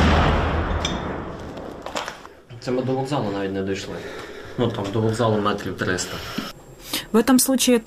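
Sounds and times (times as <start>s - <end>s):
heavy artillery boom from shells landing in a city: 0.0s - 2.2s
sharp crack: 0.0s - 2.3s
speech: 2.6s - 6.5s, 7.1s - 7.8s.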